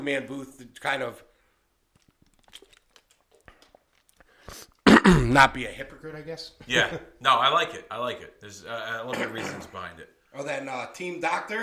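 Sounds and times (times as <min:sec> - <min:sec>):
speech: 0:00.0 - 0:01.3, 0:04.5 - 0:11.6
crunch: 0:01.9 - 0:04.6
plastic water bottle crinkling and clicking as someone takes a sip: 0:01.9 - 0:04.8.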